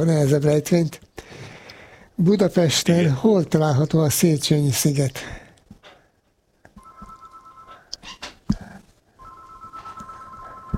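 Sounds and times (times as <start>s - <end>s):
speech: 0.0s - 1.0s, 2.2s - 5.4s
electronic telephone ring with buzzing tone: 6.8s - 7.9s, 9.2s - 10.7s.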